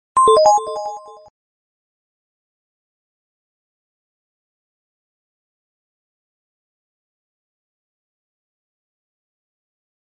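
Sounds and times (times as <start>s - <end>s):
short electronica message alert tone: 0.2s - 1.3s.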